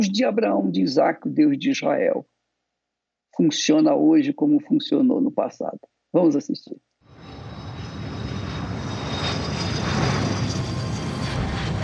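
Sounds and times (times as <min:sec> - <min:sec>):
speech: 0:00.0 - 0:02.4, 0:03.4 - 0:07.4
airplane engine droning in flight: 0:07.1 - 0:11.8.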